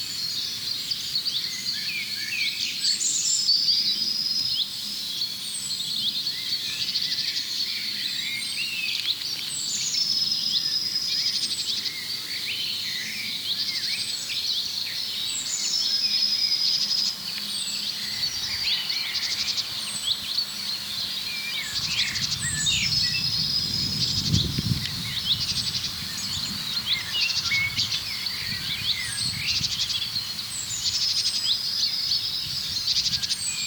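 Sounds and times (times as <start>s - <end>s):
dense steady chorus of other birds: 0.0s - 33.6s
common chaffinch calling with short clear whistled notes: 13.9s - 33.6s
buzzing insects: 15.6s - 33.6s.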